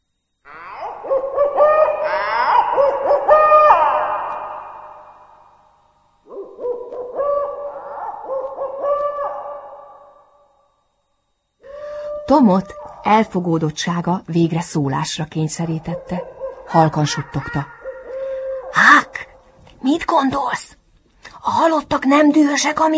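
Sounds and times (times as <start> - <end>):
owl hooting in the distance beside a grave under elm trees: 0.5 - 5.5, 6.2 - 10.4, 15.6 - 19.6
speech: 12.3 - 17.8, 20.1 - 20.8, 21.5 - 22.9.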